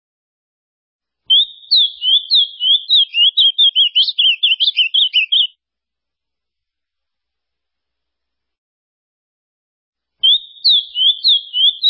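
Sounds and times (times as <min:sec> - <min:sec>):
Ultramarine grosbeak singing a rich whistled phrase: 0:01.3 - 0:05.5, 0:10.2 - 0:11.8.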